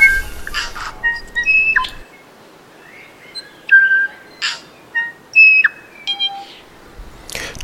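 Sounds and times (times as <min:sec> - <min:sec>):
bird singing from a treetop: 0:00.0 - 0:06.8.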